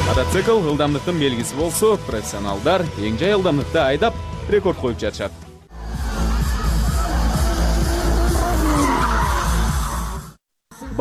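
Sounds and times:
speech: 0.2s - 5.4s
car tires squealing and skidding while drifting: 5.8s - 10.2s.

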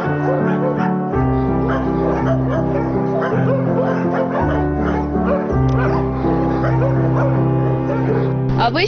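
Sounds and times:
large dog barking and yipping at animal shelter: 0.0s - 8.5s
large dog whimpering: 1.6s - 8.3s.

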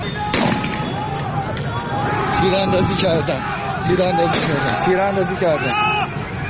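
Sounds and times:
crowd of protesters shouting and screaming: 0.0s - 6.4s
gunshots fired by riot forces at protesters: 0.3s - 1.2s.

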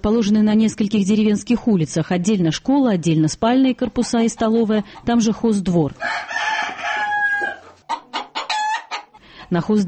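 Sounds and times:
speech: 0.0s - 6.5s, 9.5s - 9.8s
chickens clucking in a village boarding school farmyard: 3.7s - 9.3s
rooster crowing in a village boarding school farmyard: 6.0s - 9.0s.

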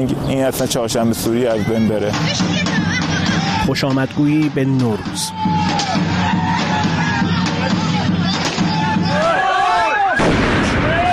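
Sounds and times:
speech: 0.0s - 6.9s
crowd murmuring and shouting: 0.0s - 11.1s
whistling rockets streaking upward: 10.0s - 11.1s
homemade firecrackers exploding in the street: 10.2s - 11.1s.

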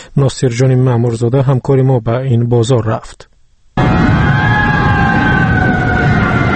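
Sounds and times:
speech: 0.2s - 3.3s
fire engine siren wailing while responding to a fire at a bazaar: 3.8s - 6.5s.

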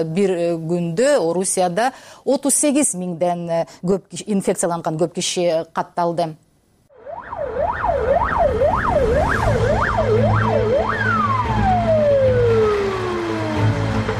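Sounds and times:
speech: 0.0s - 6.5s
ambulance siren wailing on city streets: 6.9s - 14.1s.

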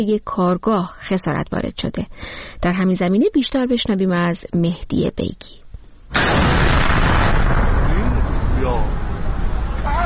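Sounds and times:
speech: 0.0s - 6.8s, 8.6s - 9.0s
explosion from a drone attack: 6.1s - 10.0s.

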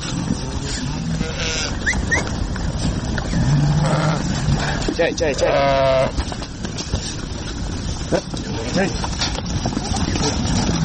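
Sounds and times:
steady noisy outdoor background on mountain pasture: 0.0s - 10.8s
flock of sheep bleating on mountain pasture: 1.0s - 1.8s, 5.4s - 6.2s
speech: 5.0s - 6.2s, 8.1s - 9.2s.

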